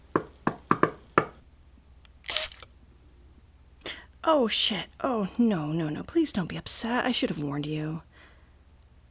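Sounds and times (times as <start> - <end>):
knocking on a door: 0.1 - 1.4
speech: 4.3 - 8.1.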